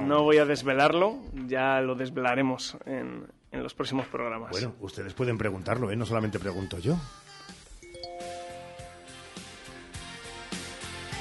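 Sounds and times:
speech: 0:00.1 - 0:07.2
steady rhythmic musical bed: 0:04.6 - 0:11.1
WhatsApp-style message notification chime: 0:07.8 - 0:09.2.

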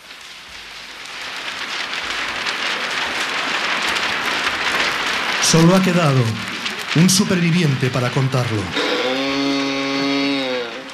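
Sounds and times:
soft steady rain: 0:00.0 - 0:10.9
speech: 0:05.5 - 0:09.0.

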